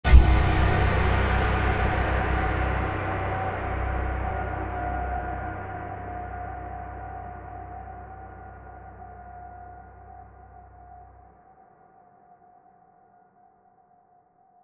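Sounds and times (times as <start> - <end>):
dark creepy horror hit: 0.0 - 11.0.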